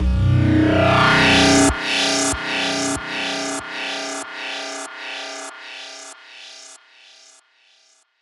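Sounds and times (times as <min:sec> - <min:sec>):
psytrance filter sweeps: 0:00.1 - 0:06.1
psytrance zaps at 142 BPM: 0:00.4 - 0:07.4.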